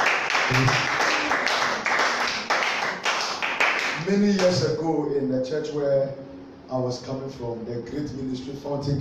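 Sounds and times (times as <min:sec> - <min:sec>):
audience clapping hands for a visiting minister: 0:00.0 - 0:04.1
speech: 0:00.5 - 0:01.0, 0:04.0 - 0:09.0.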